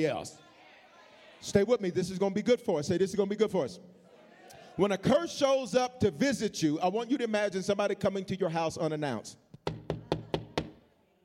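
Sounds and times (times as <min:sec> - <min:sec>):
speech: 0:00.0 - 0:00.5, 0:01.4 - 0:04.0, 0:04.8 - 0:09.4
heavy police-style knocking on a door: 0:09.6 - 0:10.8.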